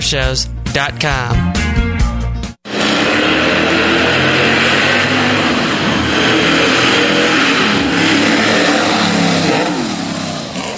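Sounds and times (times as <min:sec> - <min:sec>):
speech: 0:00.1 - 0:01.9
car engine revving hard: 0:02.7 - 0:10.7.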